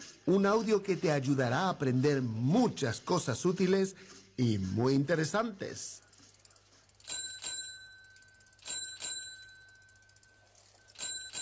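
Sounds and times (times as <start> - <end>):
speech: 0.0 - 6.1
bicycle bell ringing: 6.3 - 11.4.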